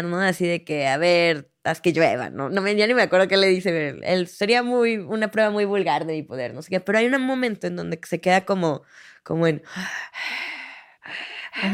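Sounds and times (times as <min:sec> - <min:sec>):
speech: 0:00.0 - 0:11.7
voice imitating heavy raspy possessed breathing: 0:08.8 - 0:11.7.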